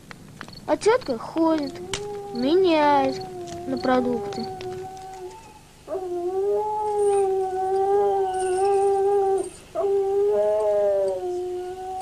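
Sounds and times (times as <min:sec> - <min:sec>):
speech: 0:00.7 - 0:04.6
dog howling in long sustained wails: 0:01.6 - 0:12.0.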